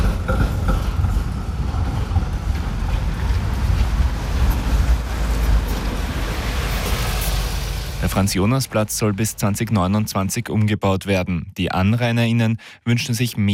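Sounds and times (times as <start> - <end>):
wind buffeting the microphone: 0.0 - 7.2
city bus turning in and rolling past on a busy square: 0.0 - 10.2
speech: 8.2 - 13.5.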